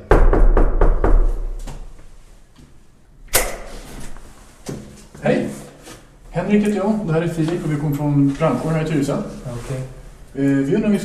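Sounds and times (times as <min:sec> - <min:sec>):
firm knocks on an apartment front door: 0:00.0 - 0:01.7
louder thumps on an apartment front door: 0:00.0 - 0:01.9
speech: 0:06.5 - 0:11.0.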